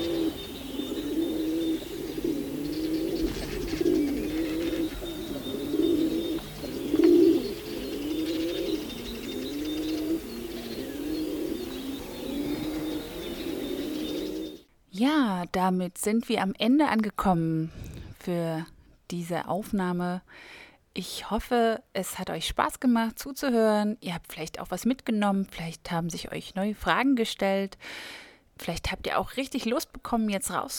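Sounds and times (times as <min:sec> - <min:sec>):
feral pigeon cooing: 0:00.0 - 0:14.6
faint higher bird chirps: 0:00.0 - 0:14.7
speech: 0:15.6 - 0:30.7.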